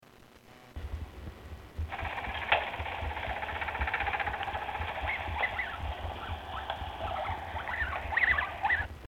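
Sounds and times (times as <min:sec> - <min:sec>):
Abyssinian guinea pig rumbling: 0:01.8 - 0:09.0.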